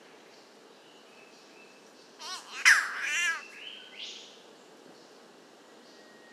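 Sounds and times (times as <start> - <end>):
spotted catbird Ailuroedus maculosus giving a nasal cat-like wail: 2.2 - 3.5.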